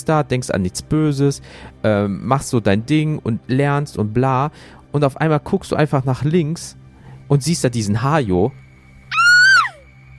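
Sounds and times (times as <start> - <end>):
speech: 0.0 - 8.6
frightened scream from a startled person: 9.1 - 9.9.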